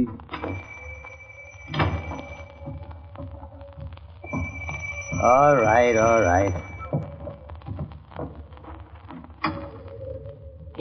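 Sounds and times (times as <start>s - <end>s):
front door opening with thud and creak: 0.0s - 10.0s
speech: 5.2s - 6.7s.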